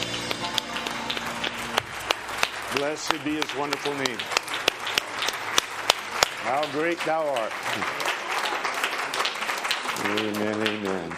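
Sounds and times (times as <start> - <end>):
sustained musical tones: 0.0 - 2.0
congregation rhythmic hand clapping at a worship service: 0.0 - 11.1
speech: 2.8 - 4.4, 6.4 - 8.1, 10.0 - 11.1.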